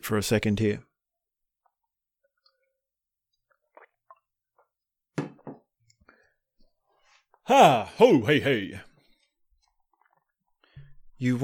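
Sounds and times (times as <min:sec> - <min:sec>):
speech: 0:00.1 - 0:00.9, 0:07.5 - 0:08.9, 0:11.2 - 0:11.4
slurp and swallow: 0:01.6 - 0:04.8, 0:09.6 - 0:10.7
person sipping water: 0:01.6 - 0:04.9, 0:09.0 - 0:11.0.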